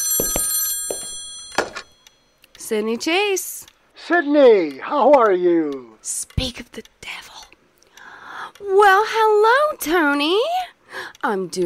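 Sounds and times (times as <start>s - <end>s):
telephone bell ringing: 0.0s - 2.4s
speech: 2.7s - 7.2s, 8.6s - 10.6s, 11.2s - 11.6s.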